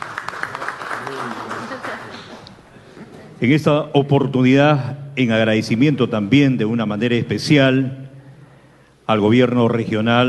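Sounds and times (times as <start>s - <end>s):
crowd clapping: 0.0s - 2.7s
speech: 3.4s - 8.0s, 9.1s - 10.2s.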